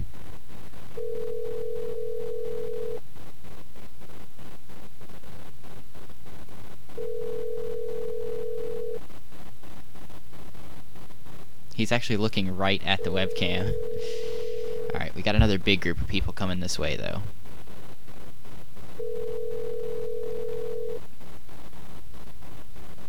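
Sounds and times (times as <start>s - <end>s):
busy hum: 0.0s - 23.0s
phone ringback tone while calling a phone: 1.0s - 3.0s, 7.0s - 9.0s, 12.9s - 15.0s, 19.0s - 21.0s
speech: 11.8s - 14.2s, 15.0s - 17.4s.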